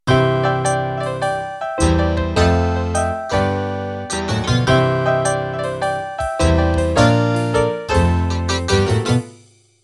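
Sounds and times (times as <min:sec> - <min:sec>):
rockabilly music intro: 0:00.1 - 0:09.4.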